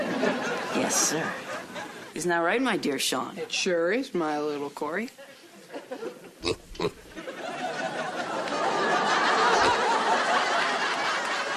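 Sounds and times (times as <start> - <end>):
laughter: 0.0 - 2.1, 5.3 - 6.4, 7.1 - 11.5
speech: 0.9 - 1.4, 2.2 - 7.0
pig grunting: 6.4 - 7.2, 9.6 - 9.9
pig squealing: 6.4 - 7.2.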